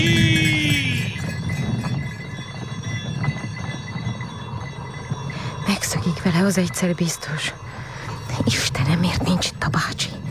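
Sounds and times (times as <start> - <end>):
horses galloping at speed: 0.0 - 5.3
speech: 6.3 - 7.8, 8.4 - 10.2.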